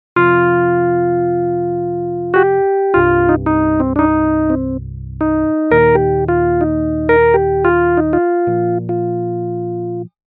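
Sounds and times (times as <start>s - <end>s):
chorus melody: 0.2s - 10.1s.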